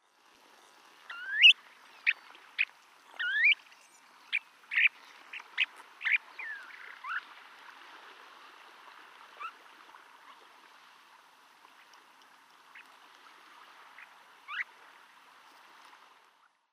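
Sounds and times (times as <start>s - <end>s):
Snowy Plover Charadrius nivosus calling: 1.1s - 3.6s, 4.3s - 7.4s, 9.3s - 9.7s, 14.0s - 14.7s.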